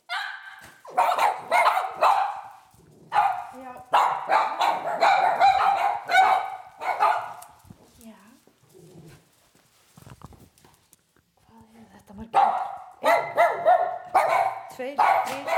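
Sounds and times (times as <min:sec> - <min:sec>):
Cavalier King Charles spaniels barking at a single-family house in Grafarvogur Iceland: 0:00.0 - 0:07.6, 0:12.3 - 0:15.5.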